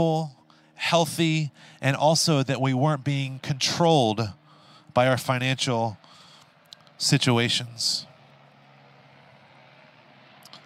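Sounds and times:
speech: 0.0s - 4.4s, 5.0s - 6.1s, 7.0s - 8.1s
faint droning hum: 0.0s - 10.6s
jet airplane roar overhead: 0.0s - 10.6s.

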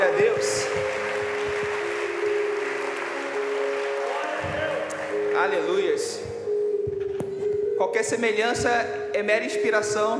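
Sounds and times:
audience applauding in agreement with a sermon: 0.0s - 6.2s
sustained keyboard chord: 0.0s - 10.1s
speech: 5.4s - 6.4s, 7.8s - 10.1s.

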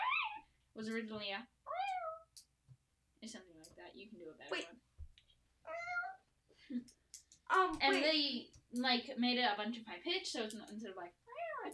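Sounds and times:
speech: 0.8s - 1.6s, 3.2s - 4.9s, 6.7s - 11.7s
cat meowing: 1.7s - 2.4s, 5.7s - 6.2s, 11.3s - 11.7s.

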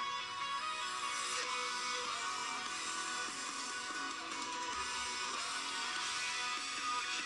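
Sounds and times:
full-band pop rock song with singing: 0.0s - 7.2s.

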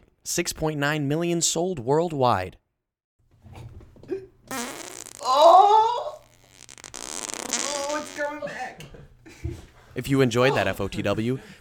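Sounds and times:
speech: 0.2s - 2.6s, 10.0s - 11.6s
loud fart sound effect: 4.5s - 8.4s.

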